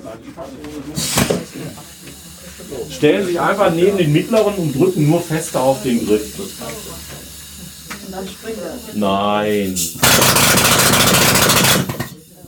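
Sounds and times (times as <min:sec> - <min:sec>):
speech: 0:00.2 - 0:01.9, 0:02.7 - 0:07.0, 0:08.2 - 0:12.0
compressed air hissing into a miner's pneumatic pick hammer: 0:00.9 - 0:12.4
pneumatic mining pick hammer hammering: 0:10.0 - 0:12.2.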